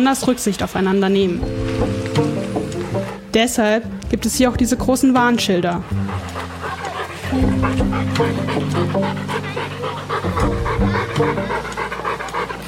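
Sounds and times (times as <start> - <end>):
speech: 0.0 - 2.4, 3.0 - 6.7, 7.3 - 9.8
dog panting at a dog park: 2.7 - 3.3, 4.9 - 12.6.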